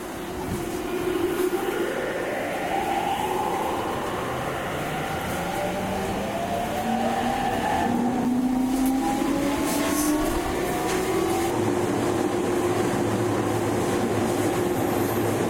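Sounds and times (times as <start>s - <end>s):
E231 series train moving slowly: 0.0s - 15.4s.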